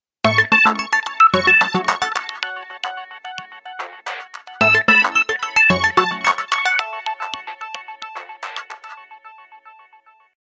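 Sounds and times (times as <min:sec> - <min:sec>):
Samsung Galaxy Win GT-I8552 phone ringtone: 0:00.3 - 0:08.0.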